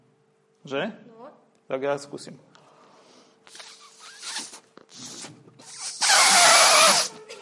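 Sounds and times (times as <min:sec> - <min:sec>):
speech: 0:00.6 - 0:02.6
person blowing air into a balloon: 0:03.4 - 0:07.2.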